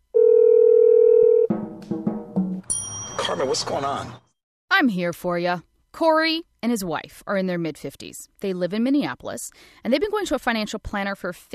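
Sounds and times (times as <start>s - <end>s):
telephone dial tone: 0.2s - 1.5s
speech: 3.3s - 4.2s, 4.8s - 11.5s.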